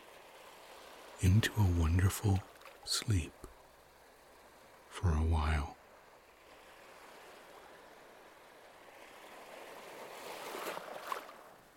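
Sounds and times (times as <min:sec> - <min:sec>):
sea waves washing against the shore: 0:00.0 - 0:11.7
speech: 0:01.2 - 0:03.4, 0:05.0 - 0:05.8.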